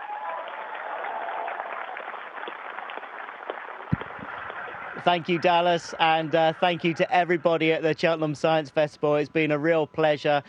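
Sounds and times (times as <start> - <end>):
audience applause at the close of a science festival talk: 0.0 - 7.7
speech: 5.0 - 10.4.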